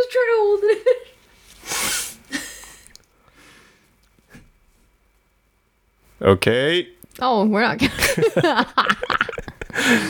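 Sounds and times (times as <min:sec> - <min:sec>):
speech: 0:00.0 - 0:01.0, 0:06.2 - 0:09.2, 0:09.8 - 0:10.0
person blowing nose: 0:01.6 - 0:02.4
person sniffing: 0:01.6 - 0:03.8
laughter: 0:07.8 - 0:10.0.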